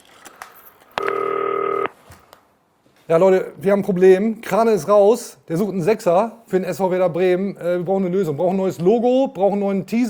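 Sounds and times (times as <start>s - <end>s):
faint clicks of dialing on a green telephone: 1.0s - 1.9s
speech: 3.1s - 10.0s.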